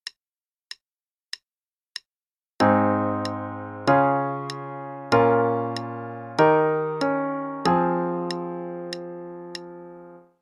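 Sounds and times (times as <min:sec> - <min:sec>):
chord progression in A-flat major: 0:02.6 - 0:10.3.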